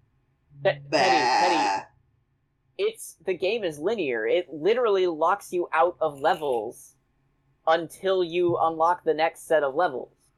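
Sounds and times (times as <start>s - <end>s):
speech: 0.6s - 1.9s, 2.8s - 7.0s, 7.7s - 10.2s
person imitating sheep bleat: 0.8s - 1.9s.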